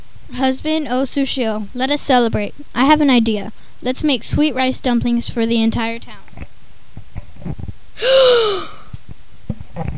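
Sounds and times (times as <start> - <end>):
speech: 0.3 - 6.2, 7.4 - 8.7
gasp of horror: 8.0 - 8.9.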